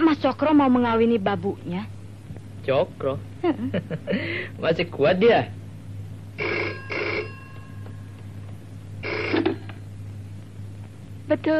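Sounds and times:
steady low hum: 0:00.0 - 0:11.5
speech: 0:00.2 - 0:02.0, 0:02.6 - 0:05.6, 0:06.4 - 0:06.9, 0:11.3 - 0:11.5
telephone bell ringing: 0:06.4 - 0:08.2, 0:09.0 - 0:09.7.

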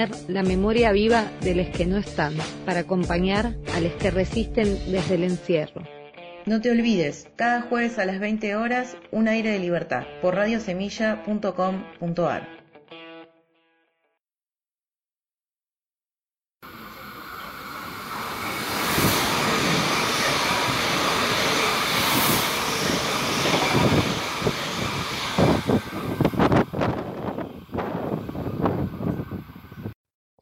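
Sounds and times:
speech: 0:00.0 - 0:12.6
interior rumble of a nearly empty white train in motion: 0:16.6 - 0:30.0.

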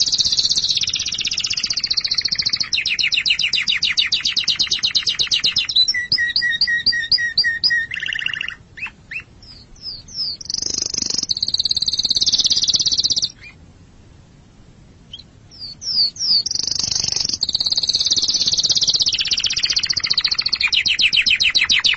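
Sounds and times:
canary song with chirps, whistles and buzzy rolling trills: 0:00.0 - 0:13.7, 0:15.0 - 0:21.9.

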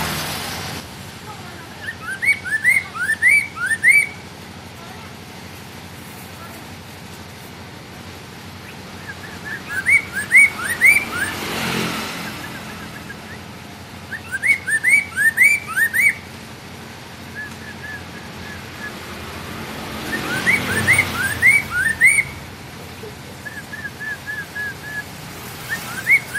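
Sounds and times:
passing vehicle noise: 0:00.0 - 0:26.3
hwamei song of rising whistles: 0:01.7 - 0:04.3, 0:08.6 - 0:11.5, 0:12.2 - 0:16.3, 0:17.1 - 0:19.2, 0:20.0 - 0:22.5, 0:23.4 - 0:26.3.

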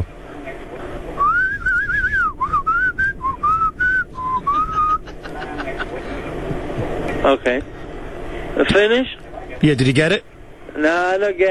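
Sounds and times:
low hum: 0:00.0 - 0:11.4
laughter: 0:04.2 - 0:07.2
speech: 0:07.3 - 0:07.8, 0:08.6 - 0:11.4.

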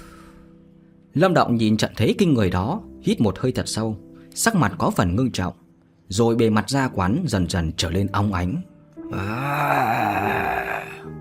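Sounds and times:
speech: 0:01.2 - 0:10.4
dragon roar sound effect: 0:09.1 - 0:11.1.

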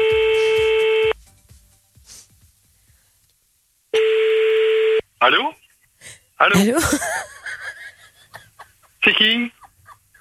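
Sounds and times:
steady electronic telephone line tone of a call being placed: 0:00.0 - 0:01.2, 0:04.0 - 0:05.0
speech: 0:05.2 - 0:07.3, 0:09.0 - 0:09.6.

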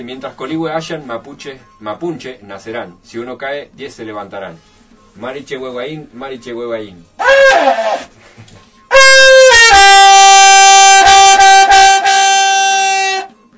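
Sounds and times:
speech: 0:00.0 - 0:08.5
Mapuche trutruca horn blown in one long brassy note: 0:07.2 - 0:08.2, 0:08.9 - 0:13.4.

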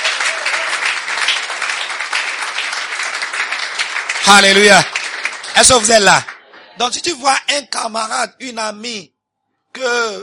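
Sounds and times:
church congregation applauding during a worship service: 0:00.0 - 0:07.2
speech: 0:04.3 - 0:05.0, 0:05.6 - 0:09.1, 0:09.8 - 0:10.2.

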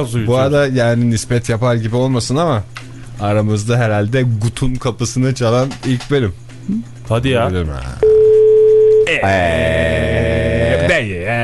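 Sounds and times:
speech: 0:00.0 - 0:08.1, 0:09.2 - 0:10.3
telephone line tone: 0:08.0 - 0:09.2.

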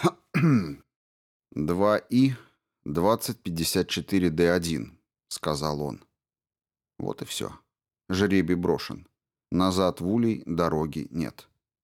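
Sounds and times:
man clearing his throat: 0:00.0 - 0:00.8
speech: 0:00.0 - 0:00.8, 0:01.5 - 0:06.1, 0:07.0 - 0:11.5.

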